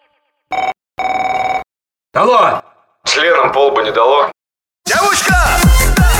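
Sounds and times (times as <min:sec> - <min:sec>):
telephone ringing: 0:00.5 - 0:01.7
speech: 0:02.1 - 0:04.3, 0:04.9 - 0:06.1.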